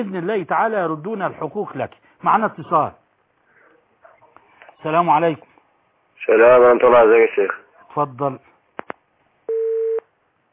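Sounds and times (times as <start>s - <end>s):
speech: 0.0s - 3.0s, 4.8s - 5.5s, 6.2s - 8.5s
steady mid-pitched telephone beep of a cut-off call: 9.5s - 10.0s.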